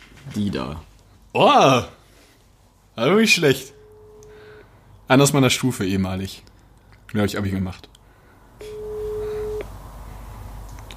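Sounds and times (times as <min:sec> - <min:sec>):
quiet noise: 0:00.0 - 0:10.9
speech: 0:00.4 - 0:02.0, 0:03.0 - 0:03.8, 0:05.1 - 0:06.5, 0:07.1 - 0:08.0
steady electronic phone tone of an unanswered call to a mobile phone: 0:03.7 - 0:04.6, 0:08.6 - 0:09.7.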